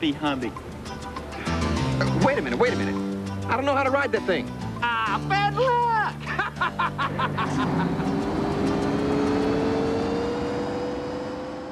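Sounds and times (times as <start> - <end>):
speech: 0.0 - 0.8, 1.4 - 8.2
laughter: 6.2 - 8.3
1988 Lotus Esprit sports car engine revving and pulling away: 7.2 - 11.7.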